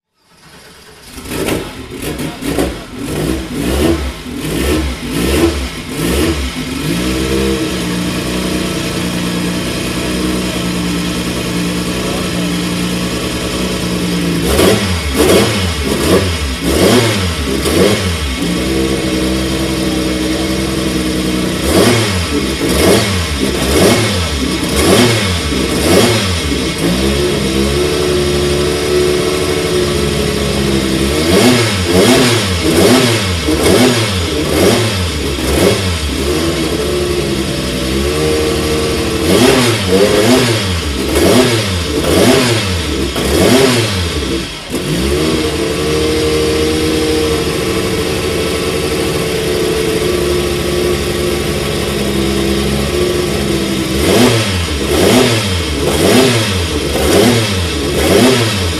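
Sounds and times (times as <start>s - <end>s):
Porsche 962 C race car engine: 0.1s - 58.7s.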